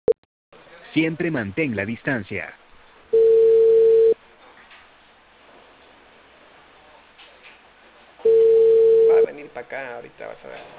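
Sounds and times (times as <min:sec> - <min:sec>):
speech: 0:01.0 - 0:02.6, 0:09.6 - 0:10.7
quiet phone line hiss: 0:03.1 - 0:04.2, 0:08.2 - 0:09.3
telephone ringback tone over a phone line: 0:03.2 - 0:04.2, 0:08.2 - 0:09.3.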